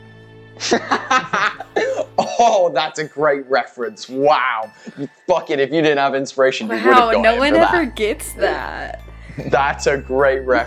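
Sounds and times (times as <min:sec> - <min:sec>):
speech: 0:00.6 - 0:01.3, 0:02.4 - 0:10.6
laughter: 0:00.6 - 0:02.4, 0:06.7 - 0:08.0
person coughing harshly: 0:01.7 - 0:02.6.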